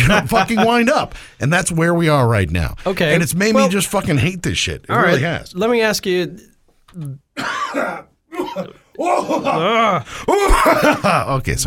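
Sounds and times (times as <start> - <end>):
laughter: 0.0 - 1.1, 9.0 - 11.4
speech: 0.1 - 11.6
harsh raspy coughing fit ending in a strained hack: 7.4 - 11.2.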